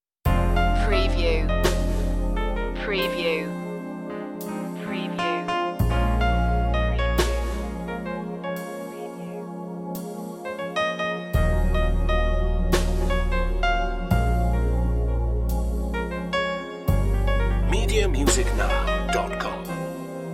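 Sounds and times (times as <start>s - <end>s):
jazz piano jam: 0.3s - 3.4s, 4.4s - 9.0s, 10.9s - 20.2s.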